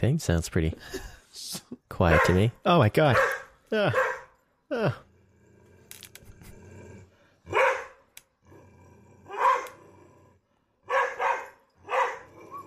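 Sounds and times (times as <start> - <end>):
speech: 0.0 - 4.1, 4.7 - 5.0
Beauceron barking fierce alert bark: 2.0 - 2.5, 3.1 - 4.3, 7.5 - 8.0, 9.3 - 9.8, 10.8 - 12.6.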